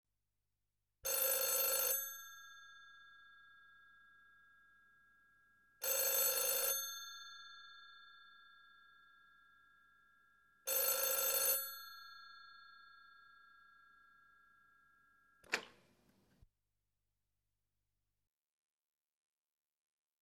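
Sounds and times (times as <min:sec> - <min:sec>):
telephone ringing: 0:01.1 - 0:02.0, 0:05.8 - 0:06.9, 0:10.7 - 0:12.8.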